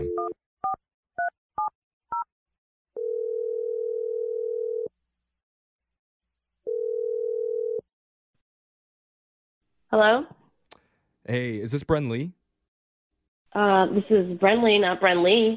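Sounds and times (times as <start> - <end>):
telephone ringback tone: 0.0 - 0.4, 3.0 - 4.9, 6.7 - 7.8
speech: 9.9 - 10.4, 11.3 - 12.4, 13.5 - 15.5.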